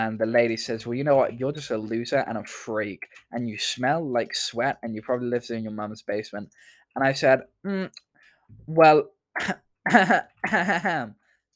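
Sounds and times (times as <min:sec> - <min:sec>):
speech: 0:00.0 - 0:11.2
person clearing throat: 0:09.4 - 0:11.1
person coughing: 0:09.4 - 0:11.1.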